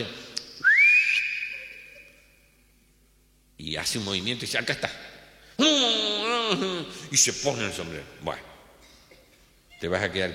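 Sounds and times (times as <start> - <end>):
speech: 0.0 - 0.2, 3.7 - 8.5, 9.8 - 10.3
short rising human whistle: 0.6 - 2.0.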